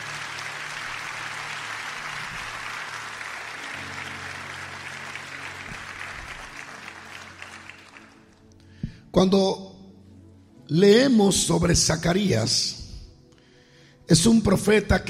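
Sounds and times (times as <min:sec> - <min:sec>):
audience applauding loudly: 0:00.0 - 0:08.6
speech: 0:09.2 - 0:09.7, 0:10.7 - 0:12.8, 0:14.1 - 0:15.0.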